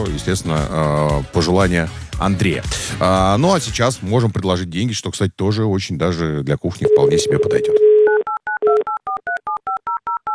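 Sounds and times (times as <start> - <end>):
speech: 0.0 - 7.9
touch-tone beeps of a telephone number being dialed: 6.9 - 10.3.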